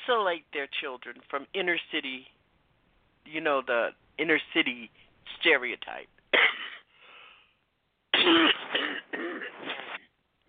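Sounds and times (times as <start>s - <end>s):
speech: 0.1s - 2.4s, 3.2s - 6.4s, 8.2s - 8.5s
person coughing: 6.3s - 6.9s, 8.2s - 10.0s
person clearing throat: 6.4s - 6.9s, 8.2s - 10.0s.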